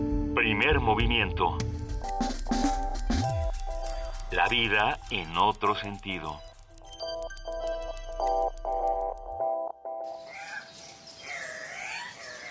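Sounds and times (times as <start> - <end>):
speech: 0.4 - 3.0, 4.3 - 6.5
pulsed electronic tones: 1.9 - 10.2
harsh squawking Andean cock-of-the-rock calls: 10.2 - 12.4.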